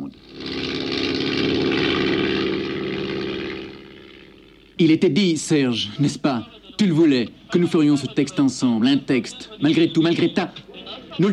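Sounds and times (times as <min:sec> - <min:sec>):
small propeller tourist airplane of an aero club droning overhead: 0:00.0 - 0:04.8
speech: 0:04.8 - 0:11.3
laughter: 0:05.9 - 0:11.3.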